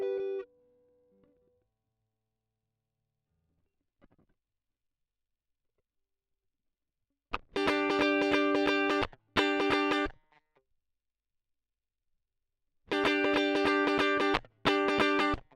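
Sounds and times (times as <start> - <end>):
guitar solo line: 0.0 - 0.5, 7.6 - 10.1, 12.9 - 15.4.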